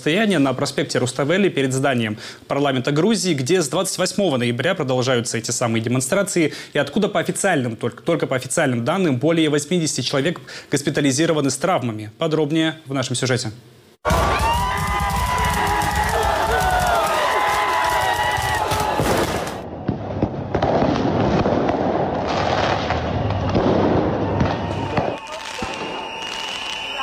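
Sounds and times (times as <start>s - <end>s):
speech: 0.0s - 13.8s
loud outdoor crowd of protesters shouting and cheering: 14.0s - 19.8s, 23.0s - 27.0s
fireworks crackling and popping in rapid dense bursts at a protest: 14.0s - 27.0s.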